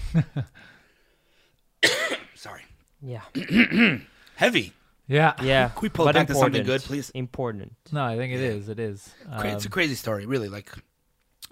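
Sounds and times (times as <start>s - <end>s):
speech: 0.1s - 0.8s, 2.4s - 11.5s
person coughing: 1.8s - 2.4s, 3.4s - 4.1s.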